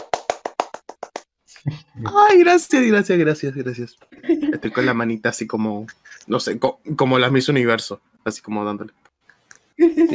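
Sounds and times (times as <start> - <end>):
hand clapping: 0.0 - 1.3
speech: 1.6 - 9.1.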